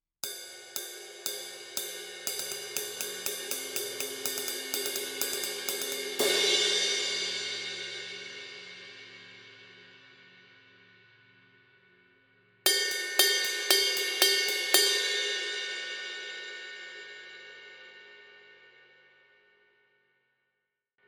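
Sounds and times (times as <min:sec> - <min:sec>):
medium 20-inch cymbal pattern: 0:00.2 - 0:11.0, 0:12.7 - 0:18.7.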